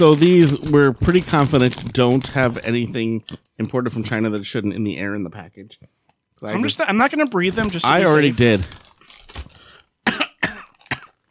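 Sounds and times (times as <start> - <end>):
speech: 0.0 - 8.8
person fake coughing: 10.0 - 11.2.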